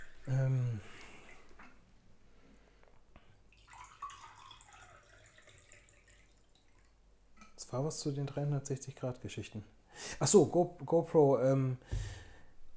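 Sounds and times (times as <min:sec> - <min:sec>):
water pouring into a glass: 0:03.5 - 0:06.9
speech: 0:07.7 - 0:12.2.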